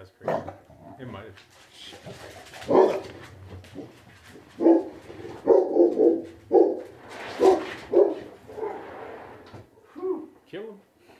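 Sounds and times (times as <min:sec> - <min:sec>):
speech: 0:01.0 - 0:06.1
rustling: 0:01.0 - 0:09.7
dogs yelping: 0:02.5 - 0:03.2, 0:04.6 - 0:08.9
dogs barking: 0:02.5 - 0:04.0, 0:04.6 - 0:08.8.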